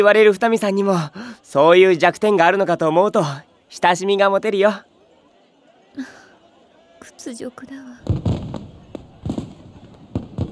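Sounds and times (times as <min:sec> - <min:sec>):
speech: 0:00.0 - 0:04.9, 0:06.0 - 0:06.2, 0:07.1 - 0:08.2
fireworks bangs and crackles: 0:08.0 - 0:10.5.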